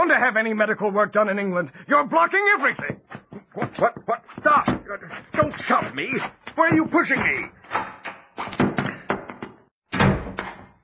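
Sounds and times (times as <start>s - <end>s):
speech: 0.0s - 7.9s
washroom door slamming shut: 7.2s - 10.6s.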